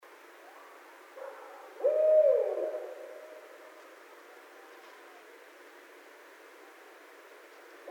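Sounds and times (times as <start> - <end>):
barred owl hooting: 1.8 - 5.4.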